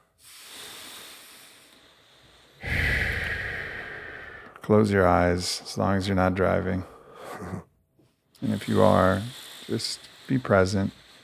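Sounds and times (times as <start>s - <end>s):
person taking deep breaths during a guided meditation: 0.1s - 7.7s, 8.4s - 11.2s
speech: 4.7s - 7.6s, 8.4s - 11.0s.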